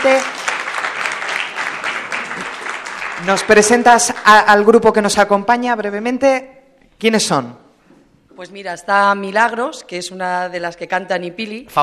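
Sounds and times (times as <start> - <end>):
speech: 0.0 - 0.4, 3.2 - 7.6, 8.4 - 11.8
audience applauding a group of singers: 0.0 - 4.6.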